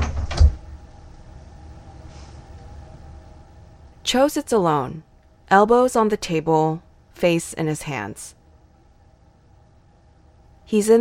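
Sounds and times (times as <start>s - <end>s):
door slamming shut: 0.0s - 0.6s
speech: 4.1s - 8.4s, 10.7s - 10.9s.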